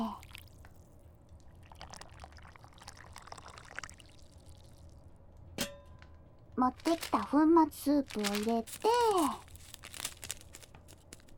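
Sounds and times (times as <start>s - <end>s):
hot water pouring into a cup: 0.0s - 5.1s
short metallic clink: 5.6s - 6.1s
speech: 6.6s - 9.4s.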